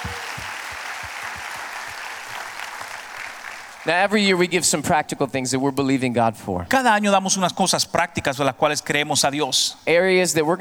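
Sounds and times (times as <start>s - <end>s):
church congregation applauding during a bilingual praise service: 0.0s - 4.3s
speech: 3.8s - 10.6s.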